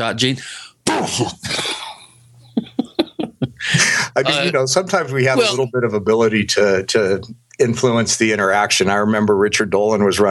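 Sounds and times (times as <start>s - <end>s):
speech: 0.0s - 1.8s, 4.2s - 10.2s
laughter: 1.0s - 4.6s, 5.2s - 5.7s
person fake sneezing into a hand: 4.3s - 4.5s.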